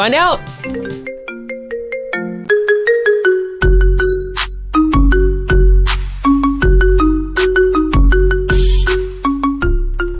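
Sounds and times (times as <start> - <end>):
speech: 0.0 - 1.1
synthesized ringtone version of a country song: 0.6 - 10.1
steady punchy bass beat: 3.7 - 9.3.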